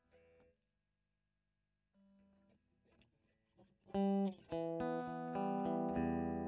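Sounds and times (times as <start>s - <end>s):
electric guitar recorded with a Royer microphone: 3.8s - 6.4s.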